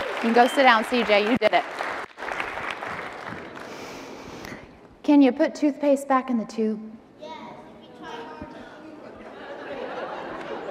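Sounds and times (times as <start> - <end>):
group applauding a child: 0.0 - 4.0
speech: 0.2 - 1.8, 5.1 - 6.9
laughter: 8.5 - 10.6.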